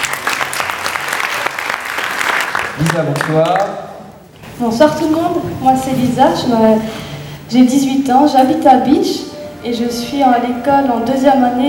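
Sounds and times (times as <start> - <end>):
audience applause at a contestant presentation evening: 0.0 - 3.8
speech: 2.8 - 3.8, 4.6 - 11.6.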